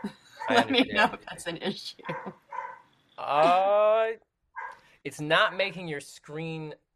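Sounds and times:
greyhound barking: 0:00.0 - 0:00.7, 0:02.1 - 0:02.9, 0:04.6 - 0:04.8
laughter: 0:00.0 - 0:02.3, 0:03.2 - 0:04.1
speech: 0:00.5 - 0:02.4, 0:03.3 - 0:04.3, 0:05.0 - 0:06.8
greyhound yelp: 0:02.1 - 0:02.9, 0:04.6 - 0:04.8.

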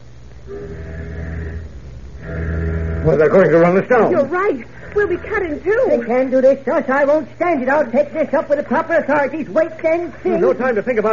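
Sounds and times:
low rumble: 0:00.0 - 0:08.3
deep droning tanker ship horn sounding warning blasts at a submarine: 0:00.4 - 0:05.9
speech: 0:03.0 - 0:11.1.

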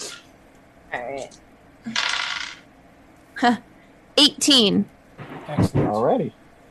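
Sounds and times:
speech: 0:00.9 - 0:02.2, 0:03.4 - 0:06.4
dice rattling and tumbling across a hard table: 0:01.9 - 0:02.6.

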